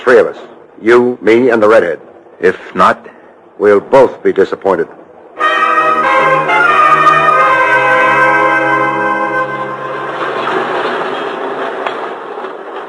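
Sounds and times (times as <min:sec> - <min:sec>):
subway train rumbling along the rails: 0:00.0 - 0:12.8
speech: 0:00.1 - 0:05.0
subway train wheels squealing on rails: 0:09.2 - 0:12.8.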